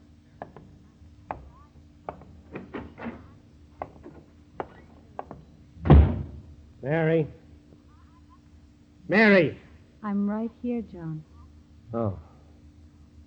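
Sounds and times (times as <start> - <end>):
heavy footsteps on a porch: 0.3 - 6.8
speech: 6.8 - 7.4, 9.1 - 11.3, 11.9 - 12.3.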